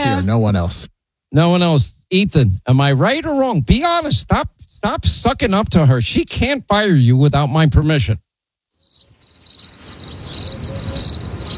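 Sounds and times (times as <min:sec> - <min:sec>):
speech: 0:00.1 - 0:08.3
crickets chirping in a high-pitched trill: 0:08.8 - 0:11.5.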